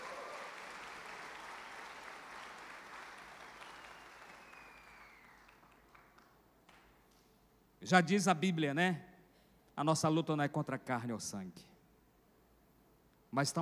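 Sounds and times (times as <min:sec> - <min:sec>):
crowd cheering at a religious sermon: 0:00.0 - 0:06.0
large crowd applauding at a religious sermon: 0:00.0 - 0:06.8
speech: 0:07.8 - 0:09.1, 0:09.8 - 0:11.7, 0:13.3 - 0:13.6.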